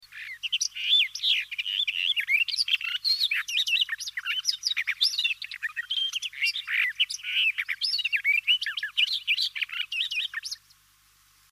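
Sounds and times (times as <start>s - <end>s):
barred warbler Sylvia nisoria singing: 0.0s - 10.9s.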